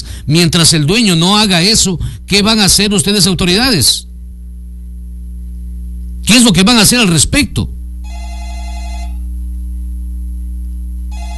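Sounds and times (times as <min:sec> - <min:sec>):
low steady hum: 0:00.0 - 0:11.3
speech: 0:00.3 - 0:04.1, 0:06.3 - 0:07.8
telephone ringing for an incoming call to a radio show: 0:08.0 - 0:09.2, 0:11.1 - 0:11.3.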